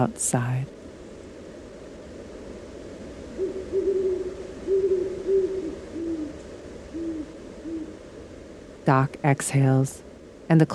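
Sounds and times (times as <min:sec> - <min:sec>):
speech: 0:00.0 - 0:00.8, 0:08.9 - 0:10.7
faint steady hush: 0:00.0 - 0:10.7
owl hooting at night: 0:03.2 - 0:08.1.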